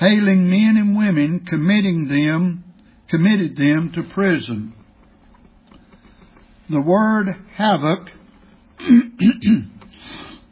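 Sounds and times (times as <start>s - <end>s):
speech: 0.0s - 0.4s, 1.4s - 4.8s, 6.7s - 8.2s, 8.8s - 10.5s
person clearing throat while reading aloud: 8.8s - 10.5s.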